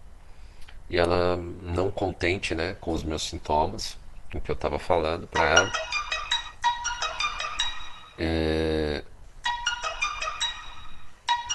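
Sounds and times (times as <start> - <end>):
speech: 0.9 - 6.0, 8.2 - 8.8
electronic cell phone message notification chimes as New Year messages arrive: 5.4 - 8.3, 9.4 - 11.5.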